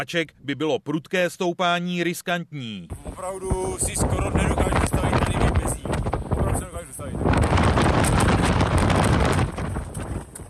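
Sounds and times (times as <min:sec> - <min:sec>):
speech: 0:00.0 - 0:05.7
strong gusting mountain wind on an icy trail in the Krkonoše mountains: 0:02.9 - 0:10.4.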